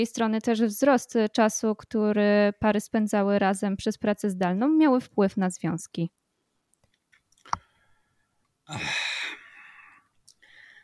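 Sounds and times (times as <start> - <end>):
speech: 0.0 - 6.2, 8.7 - 9.0
deep breath drawn in sharply: 7.7 - 10.8.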